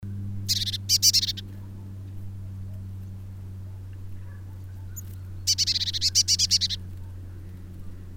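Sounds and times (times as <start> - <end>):
low hum: 0.0 - 8.1
Eurasian blue tit Cyanistes caeruleus churring rattles: 0.5 - 1.5, 4.9 - 6.8.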